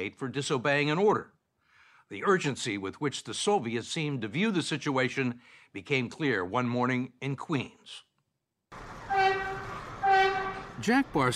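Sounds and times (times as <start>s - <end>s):
speech: 0.0s - 1.4s, 2.1s - 8.1s, 10.8s - 11.3s
subway train rumbling at a station platform: 8.8s - 11.3s
loud tonal subway train horn blasts: 9.0s - 10.8s.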